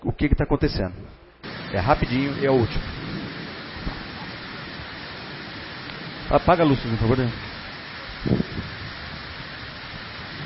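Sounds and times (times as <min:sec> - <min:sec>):
speech: 0:00.2 - 0:01.1, 0:01.7 - 0:03.0, 0:06.3 - 0:07.4, 0:08.2 - 0:08.5
heavy rain flooding a street market: 0:01.4 - 0:10.4.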